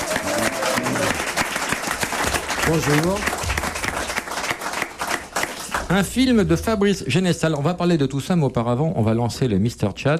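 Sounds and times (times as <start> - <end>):
studio audience applause greeting guests: 0.0 - 6.2
studio crowd noise: 0.0 - 6.3
speech: 2.7 - 3.4, 5.9 - 10.1.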